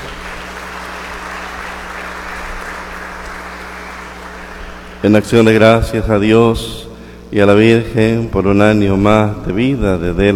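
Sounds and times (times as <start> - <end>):
audience at a Mass applauding: 0.0 - 5.0
speech: 5.0 - 10.3.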